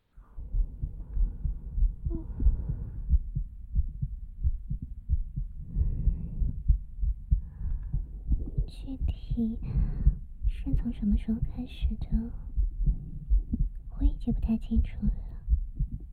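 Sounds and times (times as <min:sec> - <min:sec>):
heartbeat heard with an ear on a person's chest: 0:00.2 - 0:16.1
speech: 0:08.8 - 0:12.5, 0:14.0 - 0:15.3.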